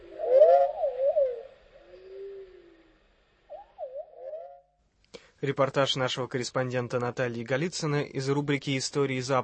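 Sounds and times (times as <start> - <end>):
wavering warbling bird-like calls in musical improvisation: 0.0 - 2.9, 3.5 - 4.7
speech: 5.4 - 9.4.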